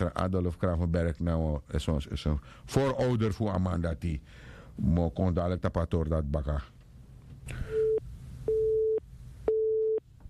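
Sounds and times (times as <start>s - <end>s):
speech: 0.1s - 6.8s, 7.5s - 7.8s
telephone busy tone after a caller's line dropped: 7.8s - 10.0s.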